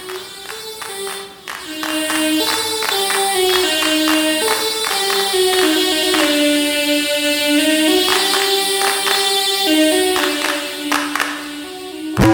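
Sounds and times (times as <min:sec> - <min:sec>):
clapping drum machine handclaps: 0:00.0 - 0:06.4, 0:07.9 - 0:09.4, 0:10.0 - 0:11.5
bright reedy software synthesizer melody in the Hejaz maqam Arabic scale: 0:00.0 - 0:12.3.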